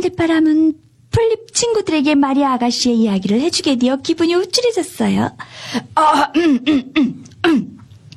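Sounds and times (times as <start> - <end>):
speech: 0.0 - 7.8
person imitating a grown-up clearing its throat and coughing: 6.1 - 7.9.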